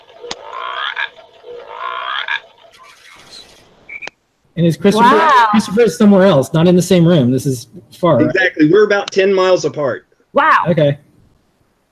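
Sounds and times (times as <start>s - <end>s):
frog croaking: 0.2s - 2.9s
speech: 4.6s - 11.0s.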